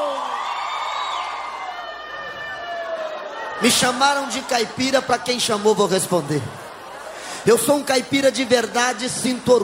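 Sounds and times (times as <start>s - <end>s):
rising whoops: 0.0s - 3.6s
audience shouting and cheering: 0.0s - 9.6s
speech: 3.6s - 6.6s, 7.4s - 9.6s.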